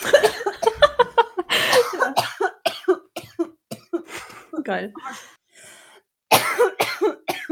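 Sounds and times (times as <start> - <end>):
person coughing: 0.0 - 0.8, 1.5 - 4.2, 6.3 - 7.4
laughter: 0.0 - 2.2
speech: 4.7 - 5.3.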